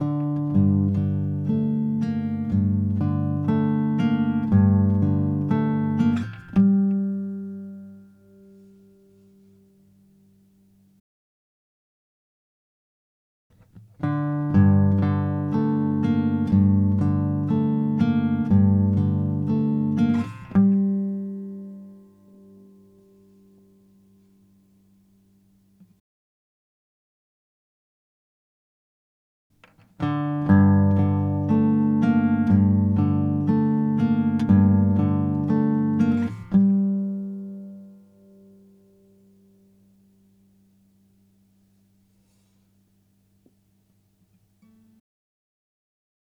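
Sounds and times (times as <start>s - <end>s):
guitar motif: 0.0s - 10.0s, 13.8s - 25.0s, 29.8s - 41.4s.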